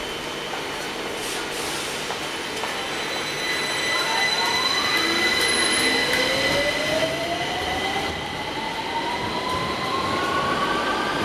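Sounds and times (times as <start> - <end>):
metro train rumbling along the track: 0.0 - 11.2
metro train high metallic squeals: 2.8 - 6.9.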